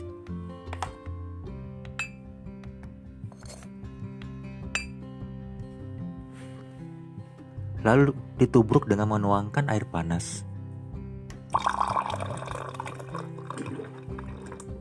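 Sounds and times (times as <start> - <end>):
steady low musical background: 0.0 - 14.7
glass clinks from spooning ground coffee and sugar into a glass: 2.0 - 2.2, 4.7 - 5.0
speech: 7.8 - 10.5.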